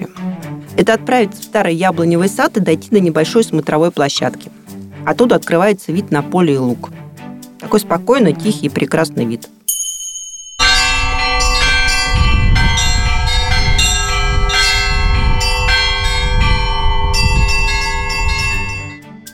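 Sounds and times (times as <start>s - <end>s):
speech: 0.8s - 7.0s, 7.6s - 9.6s
church bells ringing from a bell tower: 10.6s - 19.0s.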